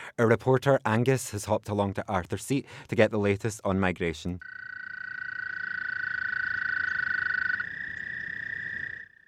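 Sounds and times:
speech: 0:00.2 - 0:04.6
toads croaking in a trilling chorus: 0:04.4 - 0:09.2.

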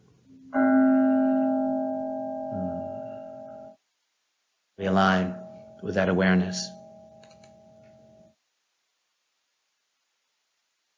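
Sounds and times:
meditation bell struck once and ringing: 0:00.4 - 0:03.8, 0:04.8 - 0:08.3
speech: 0:05.0 - 0:06.8.

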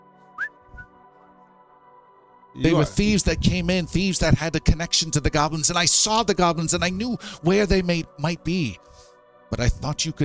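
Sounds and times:
person whistling: 0:00.4 - 0:00.9
speech: 0:02.6 - 0:10.2.

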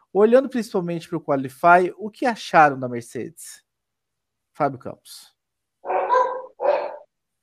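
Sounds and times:
speech: 0:00.1 - 0:03.6, 0:04.6 - 0:06.0
dog giving gruff barks: 0:05.8 - 0:07.1.

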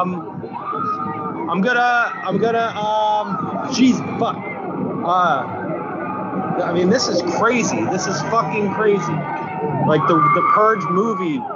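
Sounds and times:
speech: 0:00.0 - 0:00.8, 0:01.5 - 0:05.6, 0:06.6 - 0:11.5
rioting crowd shouting and yelling while flipping a police car: 0:00.0 - 0:11.5.

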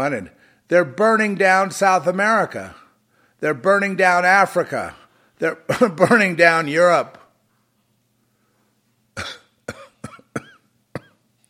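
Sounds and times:
speech: 0:00.0 - 0:02.8, 0:03.4 - 0:07.2, 0:09.2 - 0:09.4
person coughing: 0:05.7 - 0:06.2, 0:09.2 - 0:11.3.

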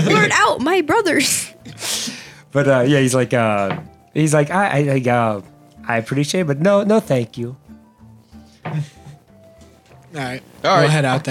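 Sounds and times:
speech: 0:00.0 - 0:07.6, 0:08.7 - 0:09.0, 0:10.1 - 0:11.2
door shutting with a thud: 0:03.7 - 0:03.9.

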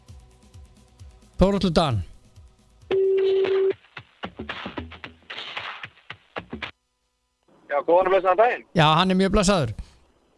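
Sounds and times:
speech: 0:01.4 - 0:02.1, 0:07.9 - 0:09.8
telephone dial tone: 0:02.9 - 0:03.8.

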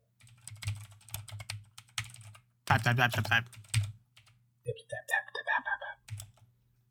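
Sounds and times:
typing on a computer keyboard: 0:00.2 - 0:04.4, 0:06.1 - 0:06.5
people talking: 0:02.7 - 0:03.5, 0:04.7 - 0:06.0.

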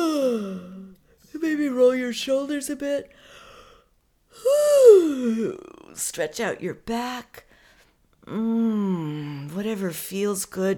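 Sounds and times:
person yawning with a stretch: 0:00.0 - 0:00.9, 0:04.4 - 0:05.8
speech: 0:01.8 - 0:03.4, 0:04.4 - 0:07.5, 0:08.3 - 0:10.7.

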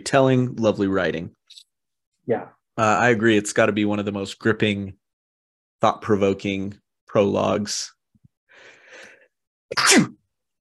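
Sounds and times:
speech: 0:00.0 - 0:01.6, 0:02.3 - 0:05.0, 0:05.8 - 0:08.0, 0:09.7 - 0:10.2
single loud sneeze: 0:09.7 - 0:10.2.

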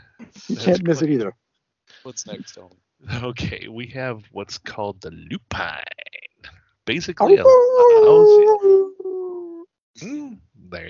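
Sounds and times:
speech: 0:00.4 - 0:01.4, 0:02.0 - 0:09.0, 0:10.0 - 0:10.8
coyote howling: 0:07.2 - 0:09.6.

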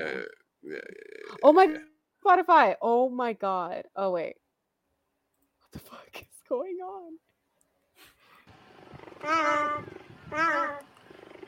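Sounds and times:
speech: 0:01.4 - 0:04.4, 0:05.7 - 0:07.3, 0:09.2 - 0:10.9
cheetah high chirping calls: 0:08.6 - 0:11.4
cheetah purring: 0:08.8 - 0:11.4.

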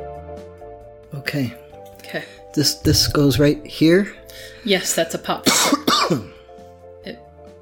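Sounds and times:
speech: 0:01.3 - 0:06.3
harsh cough into a microphone: 0:05.4 - 0:06.4.

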